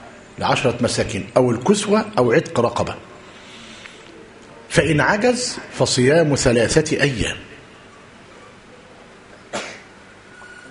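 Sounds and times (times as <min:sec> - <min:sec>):
faint steady hum: 0:00.0 - 0:10.6
speech: 0:00.4 - 0:03.1, 0:04.8 - 0:07.5
boy sneezing: 0:09.5 - 0:09.9.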